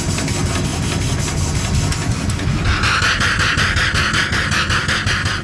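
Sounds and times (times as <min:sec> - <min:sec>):
small steam engine of small open boat chugging: 0:00.1 - 0:05.4
pulsing hiss of steam: 0:01.7 - 0:05.4.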